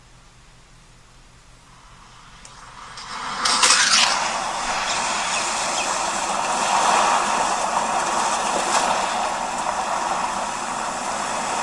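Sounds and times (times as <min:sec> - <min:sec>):
ocean surf: 0:01.8 - 0:11.6.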